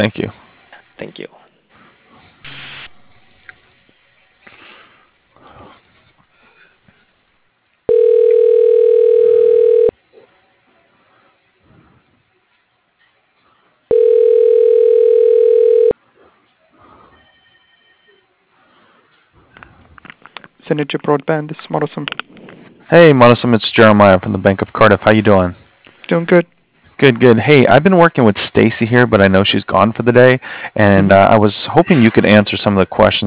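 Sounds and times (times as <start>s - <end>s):
speech: 0.0s - 0.4s, 1.0s - 1.4s, 20.7s - 22.3s, 22.9s - 33.2s
telephone line tones during a call transfer: 7.9s - 9.9s, 13.9s - 16.0s.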